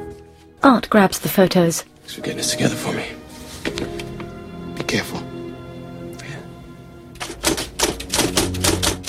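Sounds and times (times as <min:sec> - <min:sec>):
speech: 0:00.6 - 0:03.2, 0:04.9 - 0:05.2
typewriter keystrokes: 0:07.2 - 0:09.0.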